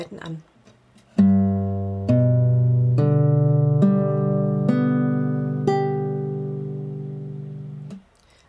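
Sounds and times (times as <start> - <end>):
instrument playing G major with alternative fingerings: 1.2 - 8.0.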